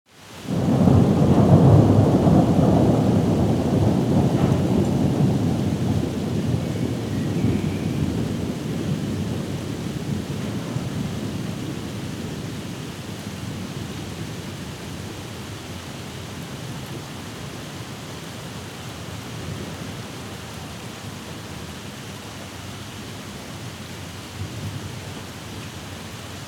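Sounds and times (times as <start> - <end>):
thunderstorm: 0.4 - 22.2, 23.0 - 25.5.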